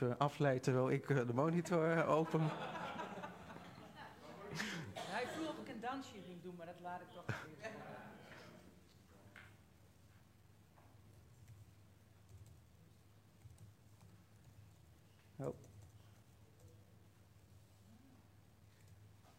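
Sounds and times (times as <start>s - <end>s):
speech: 0.0s - 3.0s, 5.8s - 8.4s, 15.4s - 15.7s
low hum: 0.0s - 19.3s
laughter: 2.2s - 5.4s, 7.2s - 8.6s
clicking of keys on a computer keyboard: 12.2s - 12.6s, 13.4s - 14.8s, 15.4s - 16.8s.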